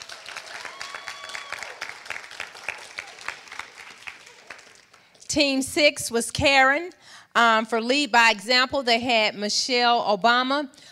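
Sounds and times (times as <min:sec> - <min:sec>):
whistles and cheers: 0:00.0 - 0:03.4
audience applause for a team: 0:00.0 - 0:05.2
speech: 0:05.3 - 0:10.9.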